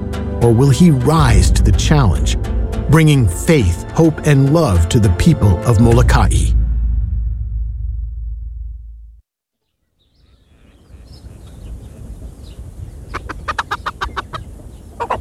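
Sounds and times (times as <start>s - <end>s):
low rumbling: 0.0s - 9.2s
speech: 0.4s - 6.6s
scratchy barnyard rustling: 10.1s - 15.1s
chickens clucking: 13.0s - 15.1s.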